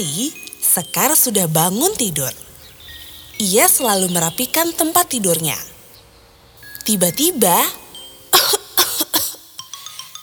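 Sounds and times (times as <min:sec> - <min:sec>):
speech: 0:00.0 - 0:02.4, 0:03.4 - 0:05.7, 0:06.8 - 0:07.8
harsh coughs: 0:08.3 - 0:09.5.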